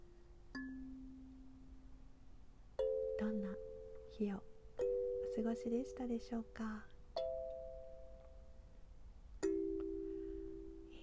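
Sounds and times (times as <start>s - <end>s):
quiet hiss: 0.0s - 11.0s
plucked kalimba notes: 0.5s - 1.6s, 2.8s - 4.1s, 4.8s - 6.0s, 7.1s - 8.5s, 9.4s - 11.0s
speech: 3.2s - 6.9s.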